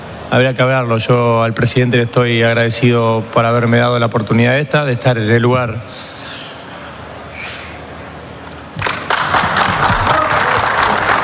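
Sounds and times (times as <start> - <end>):
speech: 0.3 - 6.2
many hands clapping in an indoor room: 8.8 - 11.2.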